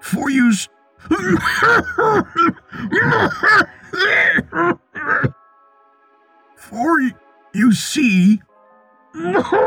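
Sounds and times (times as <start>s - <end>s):
speech: 0.1s - 4.8s, 6.7s - 8.5s, 9.2s - 9.6s
voice acting out rough throaty coughing for a creature character: 1.0s - 5.4s.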